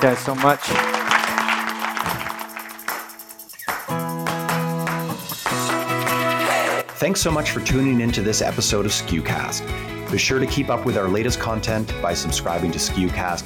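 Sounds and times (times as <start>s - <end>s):
speech: 0.0s - 1.0s, 7.0s - 13.4s
small crowd applauding a panel: 0.0s - 7.0s
upbeat music with steady sustained tones: 0.0s - 13.4s.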